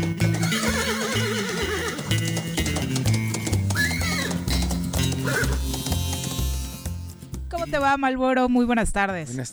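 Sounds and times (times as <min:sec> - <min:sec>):
horse whinnying and neighing: 0:00.0 - 0:05.9
bouncy music track with a steady bass beat: 0:00.0 - 0:07.9
speech: 0:07.9 - 0:09.5.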